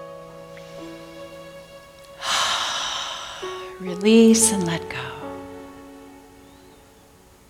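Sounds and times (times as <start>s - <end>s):
deep breath drawn in during a seated relaxation exercise: 2.2s - 3.8s
speech: 3.8s - 5.2s.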